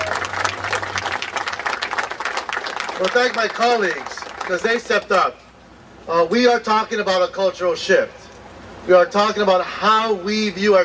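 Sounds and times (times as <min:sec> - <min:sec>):
sustained audience applause of many hands clapping: 0:00.0 - 0:04.6
speech: 0:03.0 - 0:05.4, 0:06.1 - 0:08.2, 0:08.8 - 0:10.8.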